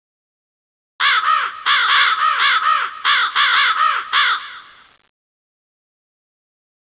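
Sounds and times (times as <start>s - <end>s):
bird giving harsh arched cawing calls: 1.0s - 4.9s.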